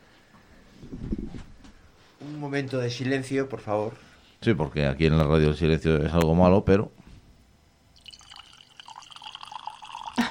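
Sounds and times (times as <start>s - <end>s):
speech: 2.3s - 7.0s
thin stream of liquid trickling into a glass: 7.9s - 10.2s.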